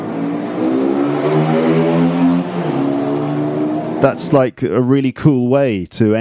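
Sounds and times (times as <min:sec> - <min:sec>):
motorbike engine revving and riding away: 0:00.0 - 0:04.4
speech: 0:04.0 - 0:06.1.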